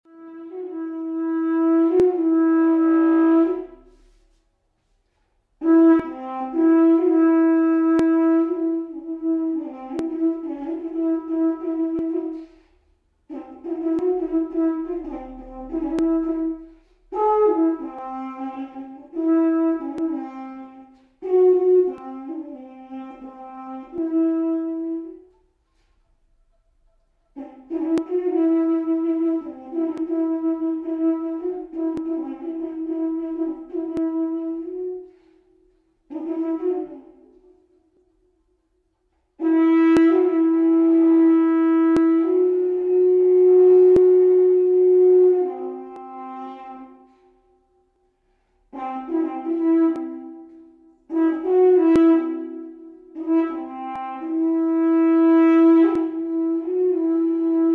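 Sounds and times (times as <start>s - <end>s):
erke horn solo: 0.0s - 4.4s, 5.0s - 38.4s, 39.2s - 57.7s.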